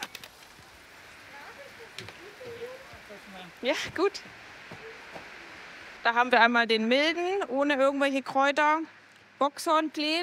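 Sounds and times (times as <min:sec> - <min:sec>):
steady rain falling: 0:00.0 - 0:10.2
faint voices murmuring: 0:01.1 - 0:06.0
speech: 0:03.4 - 0:04.4, 0:06.0 - 0:10.2.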